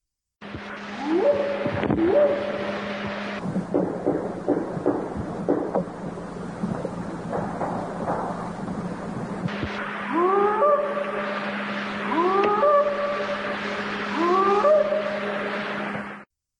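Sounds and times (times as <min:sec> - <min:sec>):
steady low hum: 0:00.0 - 0:16.3
rising hooting whoop calls: 0:00.8 - 0:03.4, 0:10.1 - 0:15.8
rapid sharp wooden-sounding knocks: 0:03.7 - 0:05.9.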